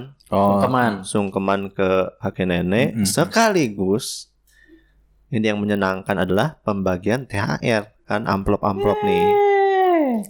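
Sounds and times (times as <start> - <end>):
speech: 0.0 - 4.3, 5.3 - 9.5
small child whimpering: 8.8 - 10.2.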